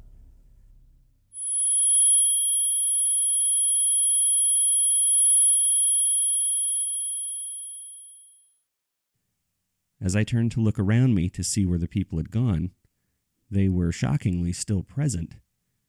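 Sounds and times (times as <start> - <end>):
low rumble: 0.0 - 1.3
high-pitched ear ringing tone like tinnitus: 1.4 - 8.6
speech: 10.0 - 12.8, 13.5 - 15.4.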